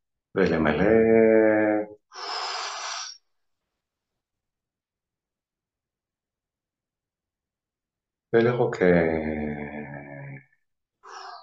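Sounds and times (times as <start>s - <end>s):
speech: 0.4s - 2.2s, 8.3s - 9.6s
deep full breaths in a breathing exercise: 2.1s - 3.4s, 11.0s - 11.4s.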